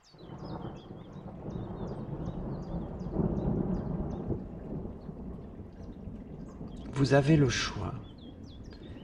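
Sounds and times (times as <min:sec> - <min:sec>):
wind blowing in a thunderstorm: 0:00.0 - 0:09.0
deep rolling thunder: 0:00.1 - 0:09.0
steady hiss of rain: 0:01.2 - 0:09.0
speech: 0:07.0 - 0:08.0.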